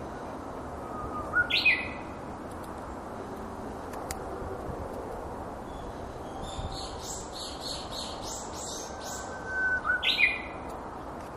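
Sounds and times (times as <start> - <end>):
Japanese bush warbler song: 0.0 - 11.3.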